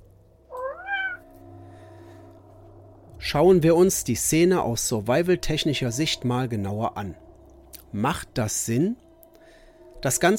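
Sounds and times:
low steady hum: 0.0s - 10.3s
faint cat meow from a film scene: 0.5s - 1.2s
speech: 3.2s - 7.2s, 7.9s - 9.0s, 10.0s - 10.3s.

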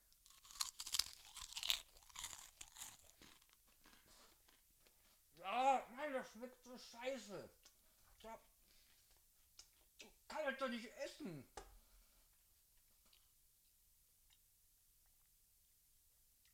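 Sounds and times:
rice cracker crunching as someone bites and chews: 0.2s - 4.0s
speech: 6.2s - 8.5s, 10.4s - 11.6s.

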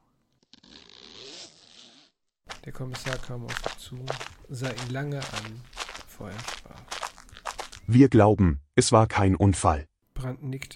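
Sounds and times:
zipper on a white overall pulled slowly shut by a kneeling figure: 0.4s - 2.2s
speech: 2.6s - 6.9s, 7.9s - 10.7s.

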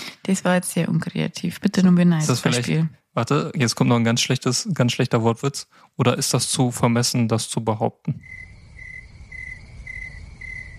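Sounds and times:
speech: 0.3s - 8.5s
crickets chirping: 8.2s - 10.7s.

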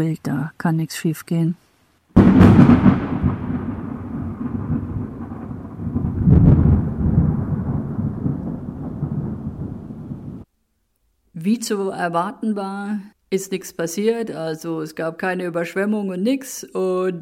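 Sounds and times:
speech: 0.0s - 2.9s, 11.4s - 17.2s
loud crack of thunder rolling into a long deep rumble: 2.2s - 10.5s
steady hiss of storm noise: 2.2s - 10.5s.

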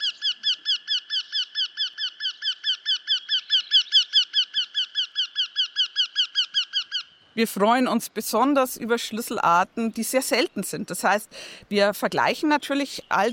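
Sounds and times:
bird call: 0.0s - 7.4s
speech: 7.4s - 13.3s.

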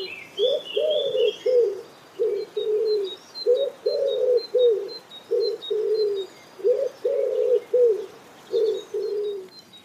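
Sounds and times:
faint higher bird chirps: 0.0s - 9.8s
wood pigeon cooing in the city: 0.0s - 9.8s.

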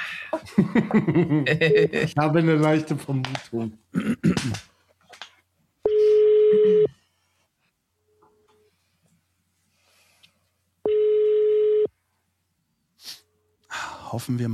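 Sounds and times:
speech: 0.3s - 4.7s, 14.1s - 14.5s
telephone ringback tone during outgoing call: 5.9s - 7.0s, 10.9s - 11.9s.

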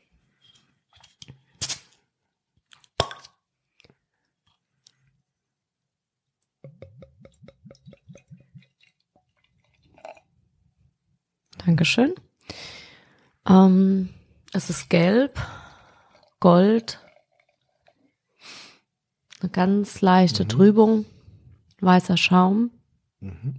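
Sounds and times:
beer bottle opened with a pop: 1.6s - 1.9s, 3.0s - 3.4s
speech: 11.7s - 12.2s, 13.5s - 15.5s, 16.4s - 17.0s, 19.4s - 21.1s, 21.8s - 23.5s.

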